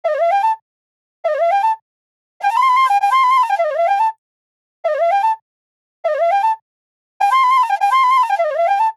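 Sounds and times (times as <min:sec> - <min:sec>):
Bihu flute loop: 0:00.0 - 0:00.6, 0:01.2 - 0:01.8, 0:02.4 - 0:04.2, 0:06.1 - 0:06.6, 0:07.2 - 0:08.9.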